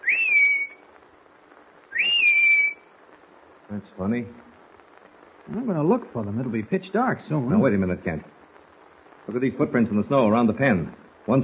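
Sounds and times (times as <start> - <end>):
person whistling outdoors in the snow as a call signal: 0.0 - 0.8, 1.9 - 2.8
speech: 3.7 - 4.5, 5.5 - 8.4, 9.3 - 11.4.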